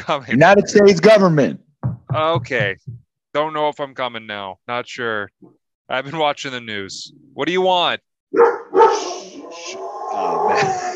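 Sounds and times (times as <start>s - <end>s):
speech: 0.0s - 10.9s
dog barking and yelping, upset by knocking at the door: 8.3s - 9.6s.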